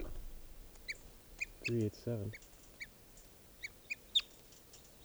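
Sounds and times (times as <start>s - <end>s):
low rustling thumps: 0.0s - 2.3s
bird alarm calls at a sharp-shinned or Cooper's hawk: 0.0s - 4.4s.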